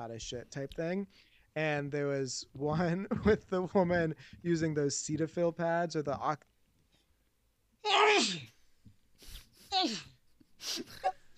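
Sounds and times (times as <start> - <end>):
speech: 0.0 - 6.5, 7.8 - 8.6, 9.2 - 11.2
person sneezing: 7.9 - 8.6, 9.2 - 11.2.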